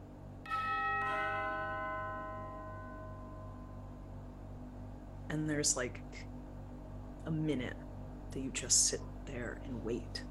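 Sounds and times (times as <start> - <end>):
doorbell chiming in a reverberant indoor space: 0.5 - 3.9
speech: 5.3 - 6.3, 7.3 - 10.2.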